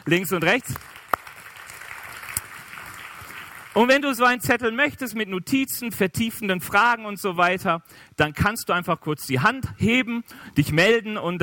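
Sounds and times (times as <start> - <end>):
speech: 0.0 - 1.0, 3.8 - 11.4
audience applauding with steady dense clapping: 0.4 - 3.8.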